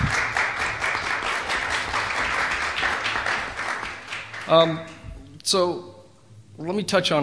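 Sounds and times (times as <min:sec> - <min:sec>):
room full of people applauding: 0:00.0 - 0:05.0
speech: 0:04.5 - 0:04.9, 0:05.5 - 0:06.0, 0:06.6 - 0:07.2.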